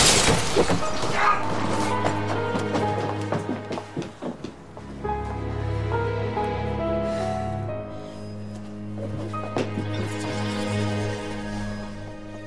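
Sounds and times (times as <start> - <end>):
glass jar smashing: 0.0 - 1.2
glass shards clattering: 0.0 - 1.2
sustained orchestral music: 0.2 - 12.4.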